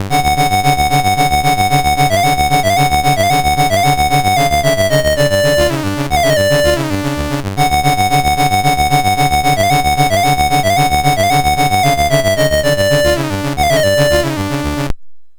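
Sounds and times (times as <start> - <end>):
chiptune music on MOS6581R4 sound chip: 0.1 - 14.9.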